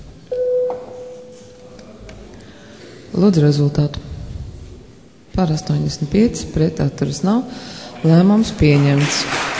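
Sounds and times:
parliament chamber electronic bell ringing before a vote: 0.3s - 1.5s
speech: 3.2s - 4.1s, 5.4s - 9.4s.

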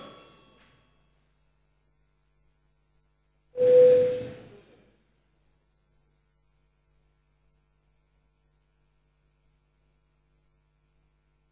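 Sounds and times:
parliamentary chamber bell ringing with a buzzing tone: 3.6s - 4.4s
faint tone: 3.6s - 4.6s.

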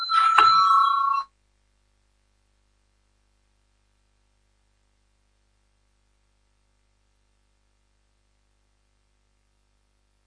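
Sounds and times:
electric bell in a parliament ringing before a vote: 0.0s - 1.3s.

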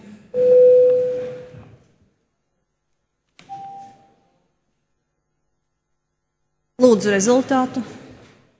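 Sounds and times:
parliament voting call bell electronic chime tones: 0.4s - 1.4s
speech: 6.8s - 8.0s.

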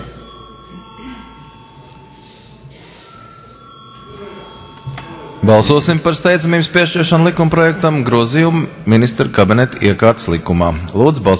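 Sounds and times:
parliamentary voting bell ringing: 0.0s - 8.0s
speech: 5.4s - 11.3s.

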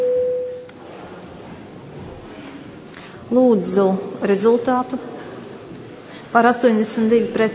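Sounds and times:
electronic voting signal tone in a parliament: 0.0s - 0.7s
speech: 3.3s - 5.1s, 6.3s - 7.5s.

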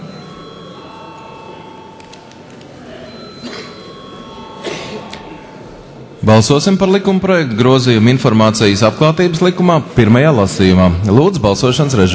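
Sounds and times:
parliamentary voting bell ringing with buzzing electric tone: 0.0s - 6.2s
speech: 6.2s - 12.1s.

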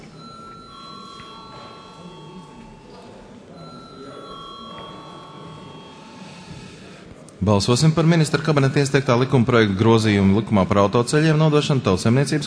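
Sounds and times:
parliament chamber electric bell ringing to call members to vote: 0.0s - 7.0s
low murmur of the parliament chamber: 0.0s - 12.4s
speech: 7.4s - 12.4s.

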